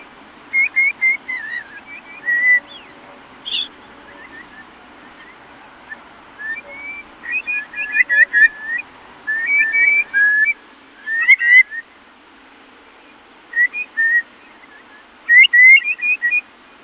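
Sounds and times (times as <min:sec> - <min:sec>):
birdsong at a wetland nature reserve in County Cork Ireland: 0:00.0 - 0:12.0, 0:12.8 - 0:16.5.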